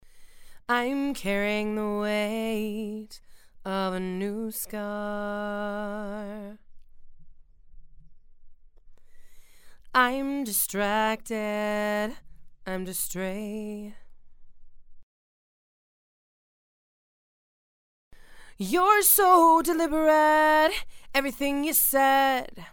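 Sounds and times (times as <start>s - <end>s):
female vocals: 0.6s - 6.6s, 9.9s - 14.1s, 18.5s - 22.7s.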